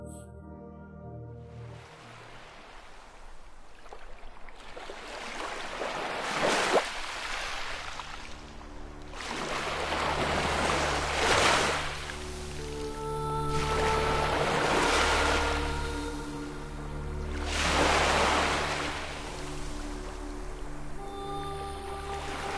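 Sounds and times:
steady low humming drone: 0.0 - 2.0, 8.2 - 22.5
ocean waves breaking and washing in: 1.6 - 22.5.

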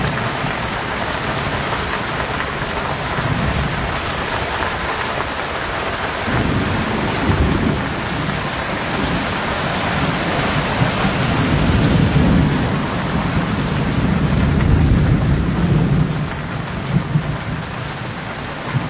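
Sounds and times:
heavy rain pouring: 0.0 - 18.8
low rolling rumbles like thunder: 2.4 - 18.0.

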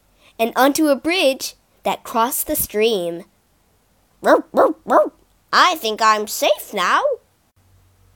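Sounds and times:
speech: 0.4 - 3.3, 4.2 - 7.2
dog barking: 4.2 - 5.2.

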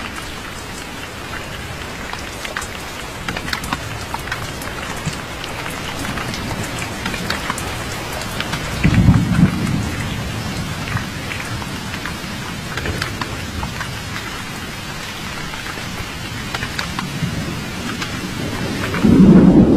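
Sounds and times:
steady dense rain hissing: 0.0 - 19.7
deep thunder rolls: 3.6 - 15.3, 16.3 - 19.7.

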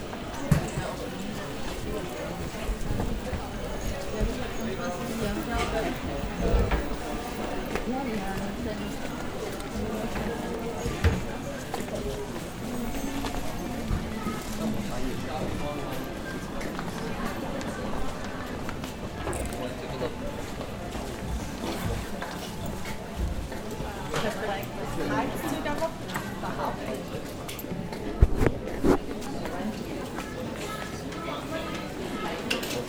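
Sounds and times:
busy market crowd chatter in Kyoto: 0.0 - 32.8.

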